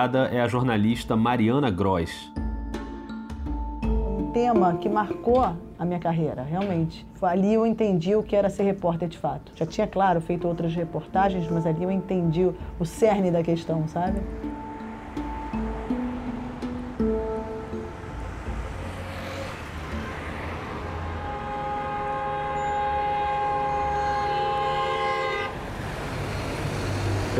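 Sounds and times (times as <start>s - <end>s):
speech: 0.0s - 2.4s, 4.4s - 14.6s
busy city street traffic rumbling: 2.7s - 27.3s
short horn-like tones: 20.0s - 25.7s
long sustained shrill tone: 20.8s - 25.6s.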